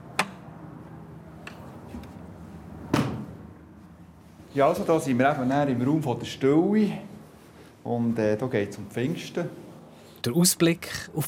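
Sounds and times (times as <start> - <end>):
heavy church door opening, creaking and shutting: 2.9 - 3.4
speech: 4.6 - 7.1, 7.9 - 9.6, 10.2 - 11.2.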